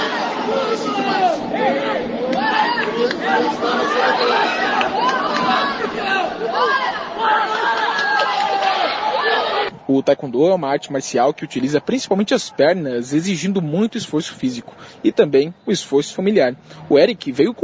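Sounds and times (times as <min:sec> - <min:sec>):
spectators shouting in the stands at a taekwondo competition: 0:00.0 - 0:17.6
speech: 0:09.9 - 0:17.6.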